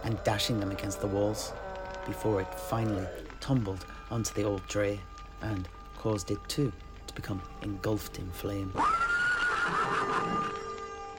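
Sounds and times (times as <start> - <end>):
speech: 0.1 - 9.0
panicked horse whinnying: 8.8 - 10.7.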